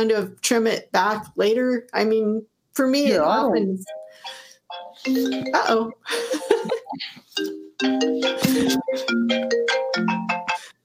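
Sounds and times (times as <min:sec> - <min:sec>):
speech: 0:00.0 - 0:10.2
phone ringtone playing a bright melodic run of chiming tones: 0:03.9 - 0:06.8, 0:07.4 - 0:10.7.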